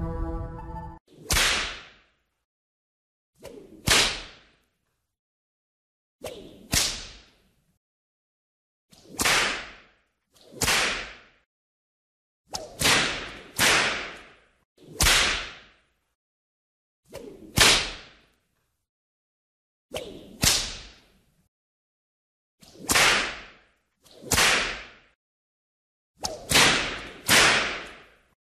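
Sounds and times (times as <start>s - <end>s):
whip crack: 1.1s - 2.1s, 3.4s - 4.6s, 6.2s - 7.4s, 8.9s - 11.4s, 12.5s - 15.8s, 17.1s - 18.3s, 19.9s - 21.1s, 22.6s - 25.2s, 26.2s - 28.2s.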